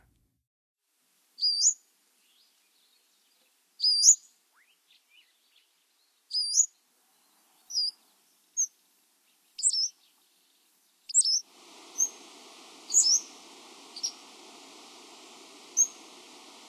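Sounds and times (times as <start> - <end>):
Pacific-slope Flycatcher calling in the Western USA: 1.4 - 1.8, 3.8 - 5.4, 6.3 - 6.8, 7.6 - 8.8, 9.5 - 10.1, 11.0 - 16.6.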